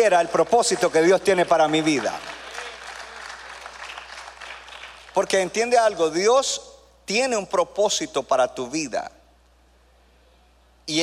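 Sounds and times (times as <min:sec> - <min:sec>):
speech: 0:00.0 - 0:02.4, 0:05.2 - 0:09.2
audience applauding: 0:00.3 - 0:05.2.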